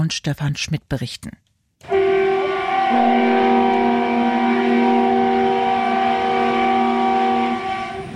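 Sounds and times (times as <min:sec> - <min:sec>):
speech: 0:00.0 - 0:01.4
horn of an SVT Görlitz express diesel railcar blaring: 0:01.8 - 0:08.1.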